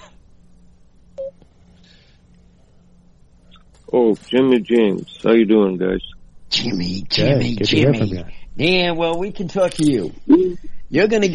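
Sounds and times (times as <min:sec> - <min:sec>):
low steady telephone line hum: 0:00.0 - 0:11.3
short telephone tone beep: 0:01.2 - 0:01.4
speech: 0:03.9 - 0:11.3.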